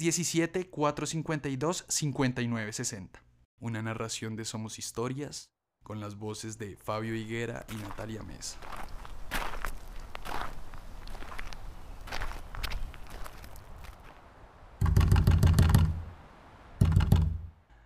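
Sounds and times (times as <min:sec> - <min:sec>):
speech: 0:00.0 - 0:09.0
footsteps: 0:07.7 - 0:14.2
door knocker banging on wooden door: 0:14.8 - 0:16.0, 0:16.8 - 0:17.5.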